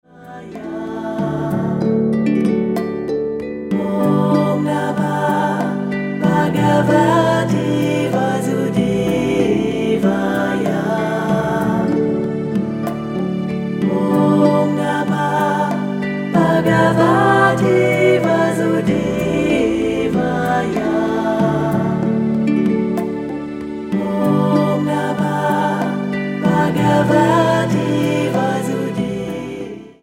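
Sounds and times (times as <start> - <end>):
harp playing: 0.1 - 30.0.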